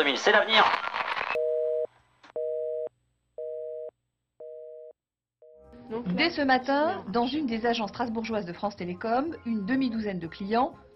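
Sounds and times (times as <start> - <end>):
speech: 0.0 - 0.9, 5.9 - 10.9
telephone busy signal after a dropped call on a Bi-Bop mobile phone: 1.4 - 5.7.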